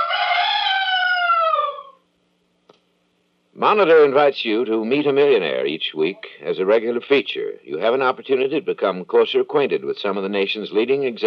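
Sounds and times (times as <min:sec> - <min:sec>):
rooster crowing: 0:00.0 - 0:02.0
speech: 0:03.6 - 0:11.2.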